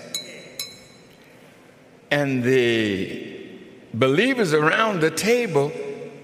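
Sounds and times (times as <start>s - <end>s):
spoon striking a crystal glass: 0.0s - 1.1s
speech: 2.1s - 3.3s, 3.9s - 5.8s.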